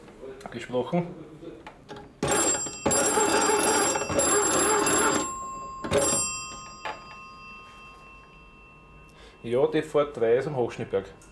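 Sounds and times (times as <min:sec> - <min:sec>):
speech: 0:00.4 - 0:01.3, 0:09.4 - 0:11.3
dispatcher's line telephone bell ringing in Morse code pattern: 0:02.2 - 0:10.0.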